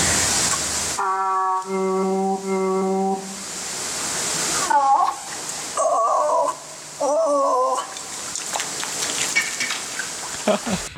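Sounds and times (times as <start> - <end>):
steady hissing water noise: 0.0 - 10.9
seal imitating human vowel sounds: 1.0 - 3.4, 4.6 - 7.9.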